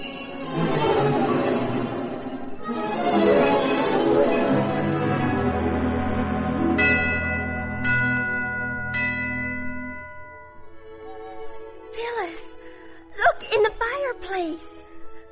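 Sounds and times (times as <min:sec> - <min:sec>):
sleigh bells jingling: 0:00.0 - 0:01.3, 0:03.1 - 0:11.2
person speaking: 0:12.0 - 0:12.6, 0:13.2 - 0:14.7.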